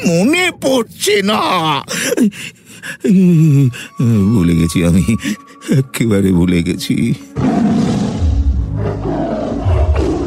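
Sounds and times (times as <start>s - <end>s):
speech: 0.0s - 8.0s
tiger roaring close by: 7.3s - 10.2s.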